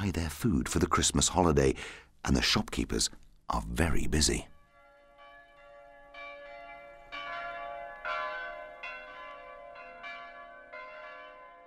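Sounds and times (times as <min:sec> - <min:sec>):
speech: 0:00.0 - 0:04.5
church bells pealing with rich ringing overtones: 0:04.2 - 0:11.6.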